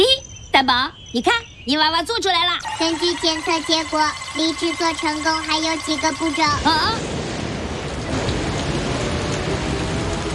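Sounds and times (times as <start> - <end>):
speech: 0.0 - 7.2
steady heavy rain pouring: 2.6 - 10.3.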